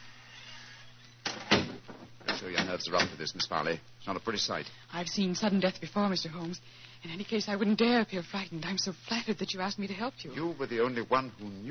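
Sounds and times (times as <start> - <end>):
low steady hum: 0.0 - 11.6
door swinging shut with a scraping click and thud: 1.2 - 3.2
speech: 2.4 - 11.6.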